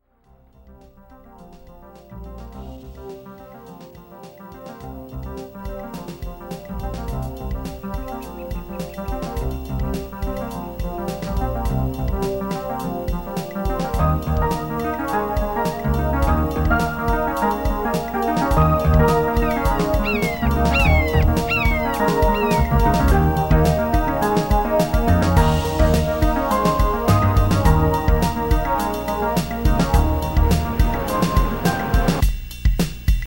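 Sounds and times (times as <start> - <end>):
VHS drums: 0.8 - 33.2.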